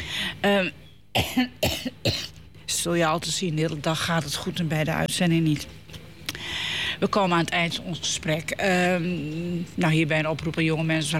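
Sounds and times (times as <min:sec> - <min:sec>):
speech: 0:00.4 - 0:05.9, 0:07.0 - 0:11.1
person coughing from a tickle in the throat: 0:01.2 - 0:02.4.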